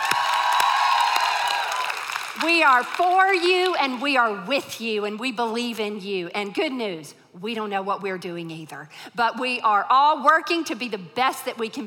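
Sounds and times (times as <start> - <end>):
audience cheering and whooping: 0.0 - 2.4
scattered clapping: 0.0 - 4.0
speech: 2.4 - 11.8.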